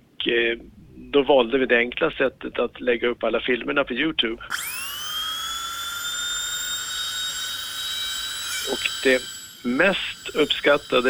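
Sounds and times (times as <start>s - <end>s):
speech: 0.2s - 4.8s, 8.7s - 11.0s
Belgian dentist's drill whining at a high pitch: 4.4s - 11.0s.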